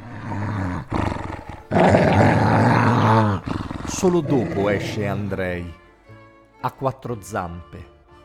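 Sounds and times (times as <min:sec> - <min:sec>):
dog on a farm growling aggressively: 0:00.0 - 0:05.3
speech: 0:04.0 - 0:05.8, 0:06.6 - 0:07.9.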